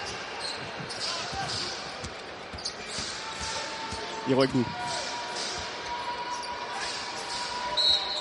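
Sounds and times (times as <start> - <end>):
arena crowd noise: 0.0 - 8.1
speech: 4.3 - 4.9
referee's whistle blast: 7.3 - 8.1.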